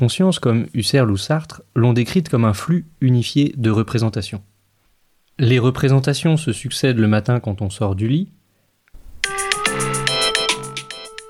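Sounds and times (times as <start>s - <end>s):
speech: 0.0s - 4.5s, 5.4s - 8.4s
alarm clock ringing with bright electronic melody: 9.3s - 11.2s.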